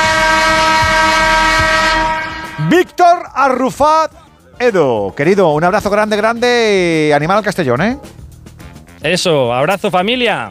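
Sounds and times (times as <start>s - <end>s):
loud horn blast: 0.0s - 3.0s
speech: 2.8s - 8.2s, 9.0s - 10.4s.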